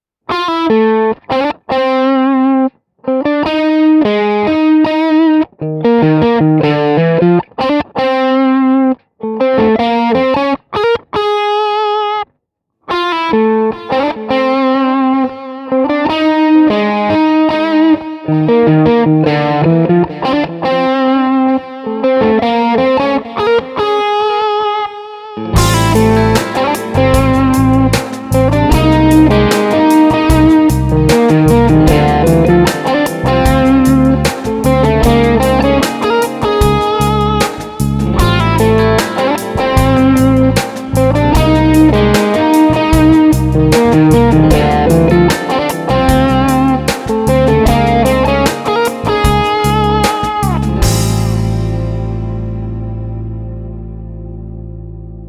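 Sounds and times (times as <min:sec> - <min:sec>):
crunchy lead electric guitar through mic preamp: 0:00.3 - 0:12.3, 0:12.9 - 0:55.2
band playing: 0:25.5 - 0:53.0.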